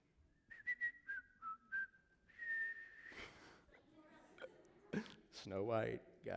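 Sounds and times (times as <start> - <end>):
person whistling a tune: 0.4 - 3.5
speech: 5.0 - 6.3.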